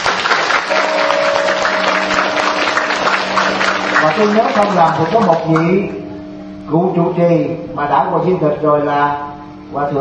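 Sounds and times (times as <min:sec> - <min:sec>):
crowd applauding: 0:00.0 - 0:06.0
faint steady hum: 0:00.6 - 0:09.9
speech: 0:04.2 - 0:06.0, 0:06.7 - 0:09.9.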